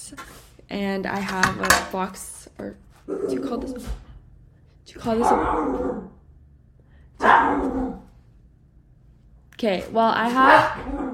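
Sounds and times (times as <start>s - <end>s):
low hum: 0.0s - 11.1s
speech: 0.1s - 4.0s, 4.9s - 6.2s, 9.6s - 11.0s
dog barking: 7.2s - 8.1s, 10.4s - 11.1s.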